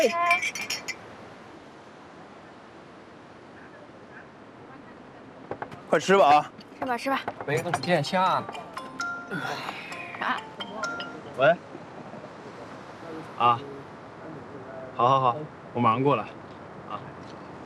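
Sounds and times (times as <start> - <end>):
people talking: 0.0 - 0.9, 3.6 - 8.6, 9.3 - 11.6, 12.2 - 16.3, 16.9 - 17.2
glasses clinking in a toast: 0.0 - 1.0, 7.3 - 11.5.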